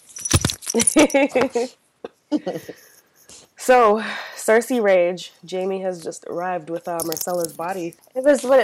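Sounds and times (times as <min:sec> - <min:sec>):
bright metallic jingling: 0:00.0 - 0:01.2
speech: 0:00.7 - 0:02.9, 0:03.7 - 0:08.6.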